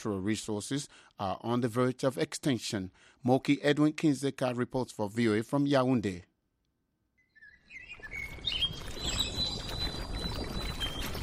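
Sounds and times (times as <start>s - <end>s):
speech: 0.0s - 6.3s
birds singing in an evening park: 7.2s - 11.2s.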